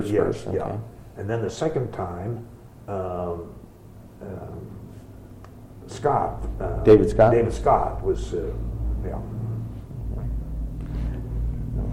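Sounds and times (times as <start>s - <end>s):
speech: 0.0s - 3.6s, 4.2s - 4.8s, 5.9s - 9.4s
low steady rumble of truck noise outside: 6.0s - 11.9s.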